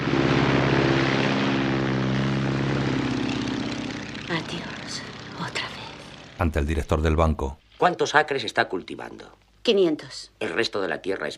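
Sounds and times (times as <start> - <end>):
biplane propeller engine droning while taking off: 0.0 - 7.7
speech: 6.4 - 11.3.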